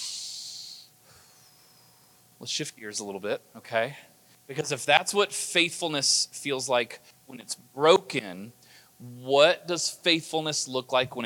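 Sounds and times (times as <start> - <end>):
speaker drawing a deep breath during a sermon: 0.0 - 2.2
speech: 2.4 - 11.2.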